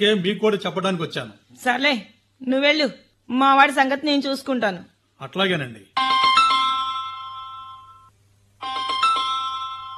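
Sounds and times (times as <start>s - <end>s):
speech: 0.0s - 6.1s
phone ringing with bright electronic chime: 6.0s - 9.9s.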